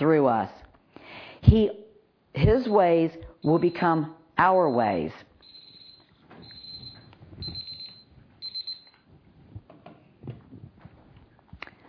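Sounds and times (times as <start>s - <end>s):
speech: 0.0s - 0.7s, 1.4s - 5.3s
high-pitched electronic alarm beeping: 2.6s - 9.0s
soft clattering and knocking: 9.4s - 11.6s.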